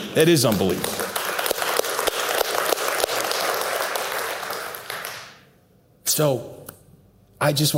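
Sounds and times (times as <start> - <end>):
crowd applause: 0.0 - 5.4
speech: 0.2 - 1.0, 6.2 - 6.5, 7.4 - 7.7.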